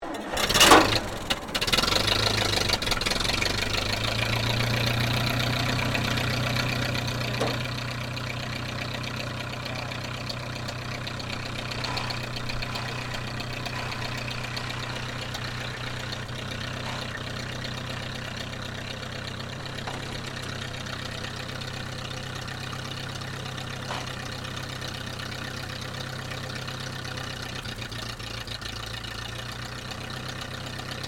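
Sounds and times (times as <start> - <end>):
1956 Ferguson tractor engine starting and idling: 0.0 - 31.0.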